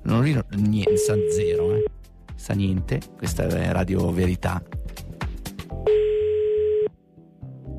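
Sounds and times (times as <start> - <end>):
speech: 0.1 - 5.1
telephone ringing tone: 0.9 - 1.9, 5.9 - 7.0.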